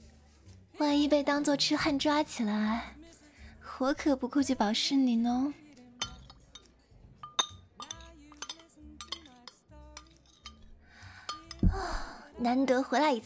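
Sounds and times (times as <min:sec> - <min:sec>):
speech: 0:00.8 - 0:03.0, 0:03.8 - 0:05.6, 0:12.4 - 0:13.2
faint clatter of dishes: 0:06.0 - 0:10.7
glasses clinking together in a toast: 0:06.0 - 0:11.7.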